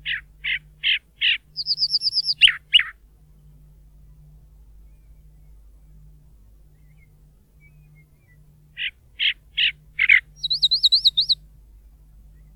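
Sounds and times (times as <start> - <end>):
chalk-browed mockingbird singing in the Bahía Blanca area, Argentina: 0.1 - 2.9, 6.8 - 11.4.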